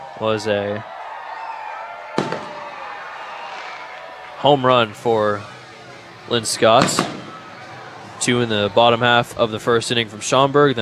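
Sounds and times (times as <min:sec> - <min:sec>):
steady noise at a ballpark: 0:00.0 - 0:10.8
speech: 0:00.2 - 0:00.9, 0:04.4 - 0:05.6, 0:06.3 - 0:07.2, 0:08.2 - 0:10.8
fireworks going off at a ballpark: 0:02.1 - 0:08.8.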